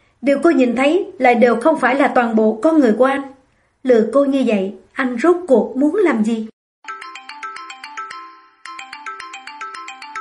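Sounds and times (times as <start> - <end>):
speech: 0.2 - 6.5
telephone ringtone playing a melodic electronic tune: 6.8 - 10.1.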